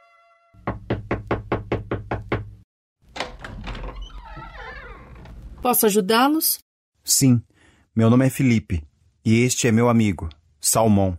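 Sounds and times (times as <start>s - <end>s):
firm loud knocking on a door: 0.6s - 2.6s
high wavering creak: 3.9s - 5.3s
speech: 5.6s - 11.1s.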